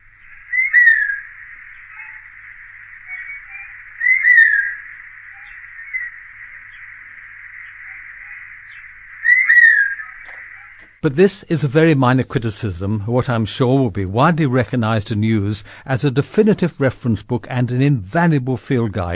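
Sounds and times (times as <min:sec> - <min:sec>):
Forest buzzard calling with clear descending pew whistles: 0:00.0 - 0:10.8
steady hiss: 0:00.0 - 0:19.1
speech: 0:11.0 - 0:19.1.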